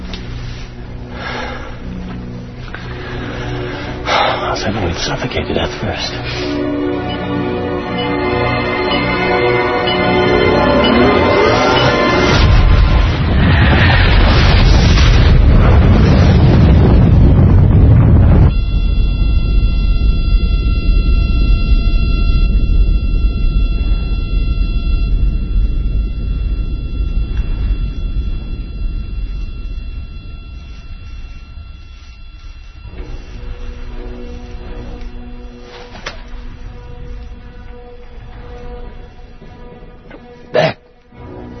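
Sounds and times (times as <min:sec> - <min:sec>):
droning hum with high tonal whines: 0:00.0 - 0:08.9, 0:09.6 - 0:41.5
speech: 0:04.6 - 0:06.9
explosion blast after a detonation: 0:11.2 - 0:40.0.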